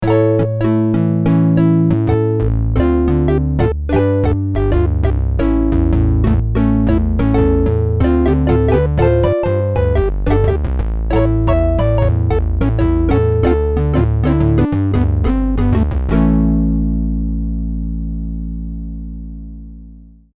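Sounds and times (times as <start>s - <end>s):
woody analog synthesizer tone: 0.0s - 20.3s.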